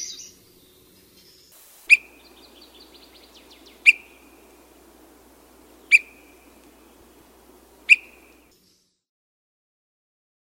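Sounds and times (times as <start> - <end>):
Swainson's thrush singing: 1.5 - 8.5.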